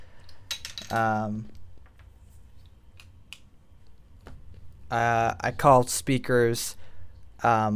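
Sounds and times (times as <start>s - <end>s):
small hard objects clattering and clinking on a desk: 0.3s - 1.2s
speech: 0.9s - 1.6s, 4.9s - 6.8s, 7.4s - 7.7s.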